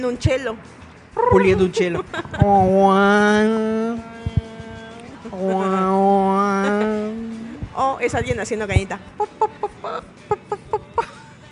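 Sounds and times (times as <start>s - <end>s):
speech: 0.0s - 4.1s, 5.3s - 6.9s, 7.8s - 10.6s
chicken clucking: 1.2s - 1.8s
laughter: 1.3s - 3.1s, 5.2s - 7.6s, 9.2s - 11.3s.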